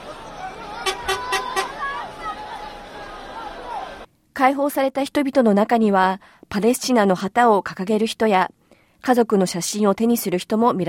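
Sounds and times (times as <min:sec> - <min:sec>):
bustling outdoor crowd with excited voices and chatter: 0:00.0 - 0:04.1
car horn honks: 0:00.8 - 0:01.8
speech: 0:04.4 - 0:10.8.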